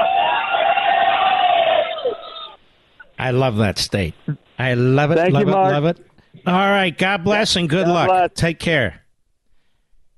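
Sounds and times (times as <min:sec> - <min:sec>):
large crowd shouting hello at a campaign tour stop in Fernley Nevada: 0:00.0 - 0:02.6
speech: 0:03.3 - 0:09.0.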